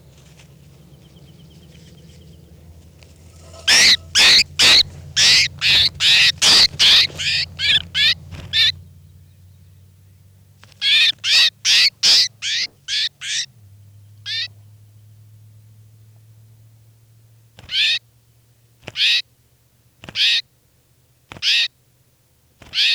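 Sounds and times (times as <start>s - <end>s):
bird giving harsh rasping calls while being handled by a researcher: 0.0s - 8.8s, 10.6s - 13.5s, 14.3s - 14.5s, 17.6s - 18.0s, 18.9s - 19.2s, 20.1s - 20.4s, 21.4s - 21.7s, 22.6s - 22.9s
low steady hum: 0.0s - 10.6s.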